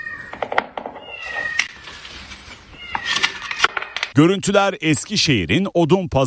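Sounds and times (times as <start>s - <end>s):
kittens meowing while stuck inside a building's drain pipe: 0.0s - 1.9s, 2.7s - 4.1s
speech: 4.2s - 6.2s.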